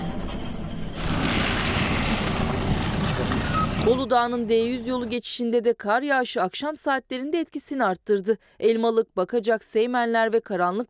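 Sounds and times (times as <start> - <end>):
strong gusting wind roaring across the microphone: 0.3 - 4.1
speech: 3.9 - 10.8.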